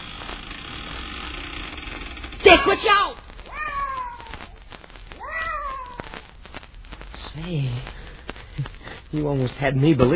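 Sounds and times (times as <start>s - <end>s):
speech: 2.4s - 3.2s, 7.4s - 8.0s, 9.1s - 10.1s
cat meowing: 2.6s - 6.3s.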